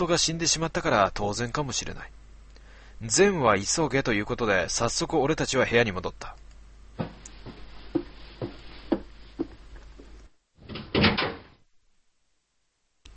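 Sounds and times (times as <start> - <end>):
speech: 0.0 - 2.2, 3.0 - 6.4
room door slammed shut and locked: 10.6 - 11.6.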